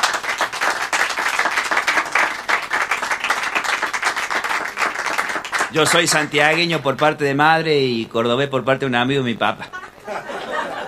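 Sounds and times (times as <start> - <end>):
audience applause: 0.0 - 6.7
speech: 5.7 - 9.8
laughter: 9.6 - 10.8.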